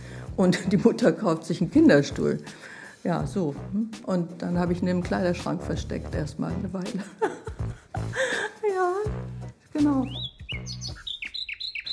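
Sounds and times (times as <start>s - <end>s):
speech: 0.4s - 7.5s, 9.8s - 10.2s
laughter: 6.8s - 8.7s
nightingale singing: 10.0s - 11.9s.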